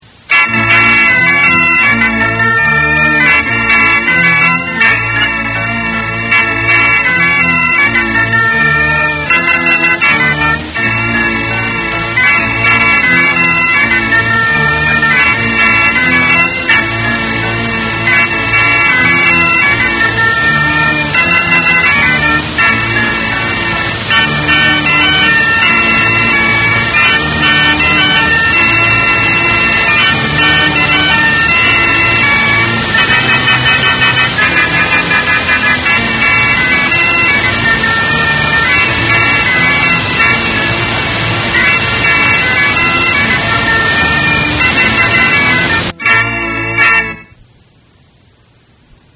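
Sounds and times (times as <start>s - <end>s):
keyboard song: 0.0s - 47.4s.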